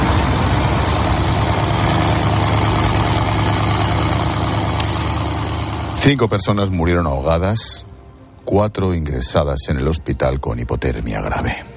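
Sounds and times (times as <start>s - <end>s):
three powerful speedboat engines running: 0.0s - 6.2s
speech: 6.0s - 7.9s, 8.5s - 11.7s.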